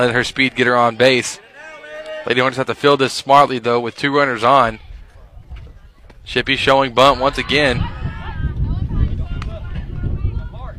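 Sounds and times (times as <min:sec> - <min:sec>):
speech: 0:00.0 - 0:01.5, 0:02.2 - 0:04.8, 0:06.3 - 0:08.0
afternoon wind buffeting the microphone at an outdoor softball game: 0:04.7 - 0:10.7.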